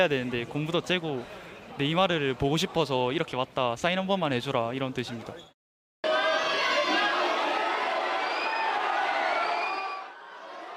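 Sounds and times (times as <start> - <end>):
speech: 0.0 - 5.5
large crowd of fans cheering at an airport: 6.0 - 10.7.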